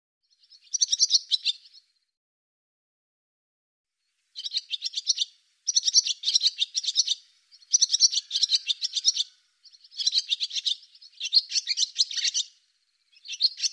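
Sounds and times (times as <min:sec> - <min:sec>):
barn swallow twittering: 0:00.3 - 0:01.9, 0:04.4 - 0:13.7.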